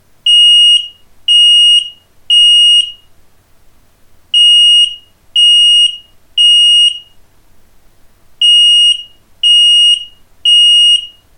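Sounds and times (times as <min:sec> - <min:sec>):
Abus smoke alarm: 0:00.3 - 0:03.0, 0:04.4 - 0:07.1, 0:08.4 - 0:11.2.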